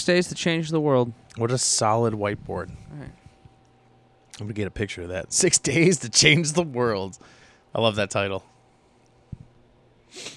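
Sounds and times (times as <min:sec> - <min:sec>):
speech: 0:00.0 - 0:03.2, 0:04.4 - 0:08.5, 0:10.1 - 0:10.3
soft low thumps: 0:02.0 - 0:03.6
person sniffling: 0:10.1 - 0:10.3.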